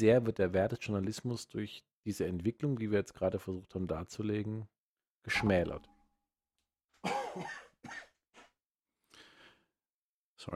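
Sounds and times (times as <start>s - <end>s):
speech: 0.0s - 5.9s, 7.0s - 8.1s
person coughing and wheezing: 7.0s - 8.2s.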